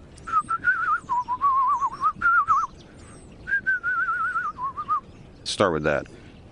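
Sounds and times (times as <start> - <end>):
person whistling imitating bird calls: 0.2 - 5.1
speech: 5.6 - 6.2.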